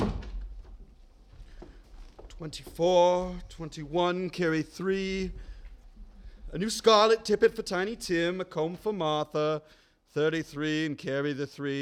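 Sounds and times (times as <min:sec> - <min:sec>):
door being shut with a soft thud: 0:00.0 - 0:00.9
rustling: 0:00.0 - 0:08.8
speech: 0:02.4 - 0:05.5, 0:06.5 - 0:11.8.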